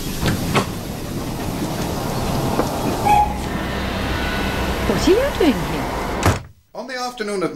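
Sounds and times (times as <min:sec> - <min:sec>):
underground train rumbling: 0:00.0 - 0:06.4
high metallic squeal of train wheels: 0:01.1 - 0:06.2
speech: 0:05.0 - 0:05.8, 0:06.9 - 0:07.5.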